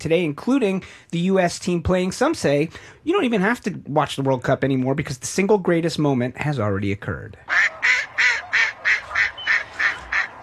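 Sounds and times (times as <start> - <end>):
speech: 0.0 - 7.8
duck quacking: 7.5 - 10.4.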